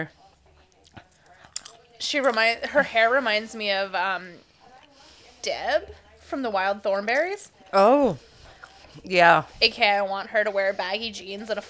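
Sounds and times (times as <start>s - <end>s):
speech: 0.0s - 0.2s, 2.0s - 4.5s, 5.4s - 8.3s, 9.0s - 11.6s
person chewing popcorn: 0.1s - 2.6s, 8.0s - 9.2s.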